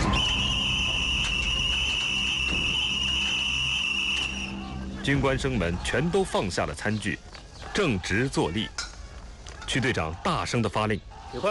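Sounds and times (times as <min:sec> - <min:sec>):
whistle blown hard by a platoon leader at a mess-hall meal: 0:00.0 - 0:04.6
speech: 0:05.0 - 0:08.8, 0:09.7 - 0:11.5.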